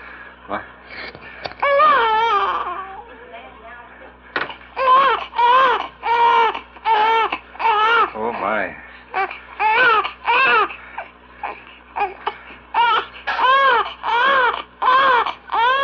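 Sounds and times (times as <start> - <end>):
speech: 0.5 - 1.3
two-and-a-half-week-old baby boy crying in a 1951 home recording: 1.6 - 3.1, 4.8 - 8.2, 9.1 - 15.8.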